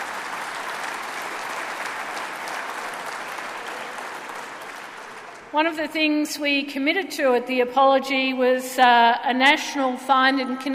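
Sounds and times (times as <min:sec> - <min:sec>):
large audience applause: 0:00.0 - 0:05.5
speech: 0:05.5 - 0:10.7.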